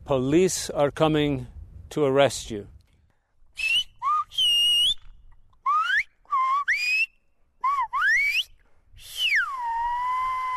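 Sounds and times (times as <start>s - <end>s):
speech: 0.1s - 2.7s
whistled phrases in Silbo Gomero whistled language warning of police: 3.6s - 10.5s.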